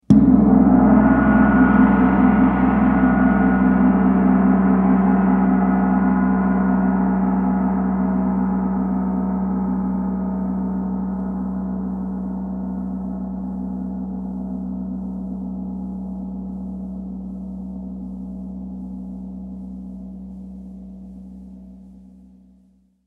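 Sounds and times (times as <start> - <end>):
large gong single long strike: 0.1 - 12.5.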